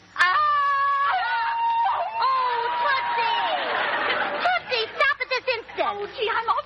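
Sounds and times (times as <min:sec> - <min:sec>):
woman screaming: 0:00.2 - 0:03.7
laughter: 0:02.2 - 0:06.0.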